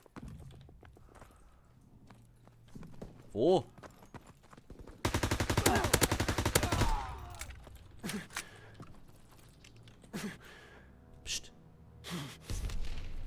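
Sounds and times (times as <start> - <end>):
speech: 3.3 - 3.7
video game automatic gunfire: 5.0 - 8.5
video game gunshots: 5.0 - 8.8, 12.5 - 13.2.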